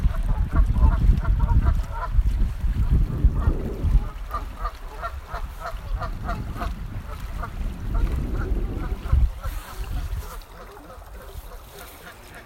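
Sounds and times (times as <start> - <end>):
loud low-pitched sloshing water: 0.0 - 12.4
geese giving nasal honks: 4.0 - 12.4.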